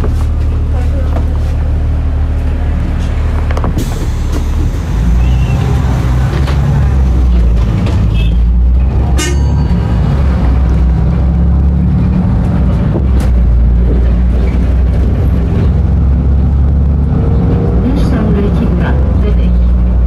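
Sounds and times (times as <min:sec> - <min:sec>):
bus engine drone on a busy coastal road: 0:00.0 - 0:20.0
passing traffic: 0:00.0 - 0:20.0.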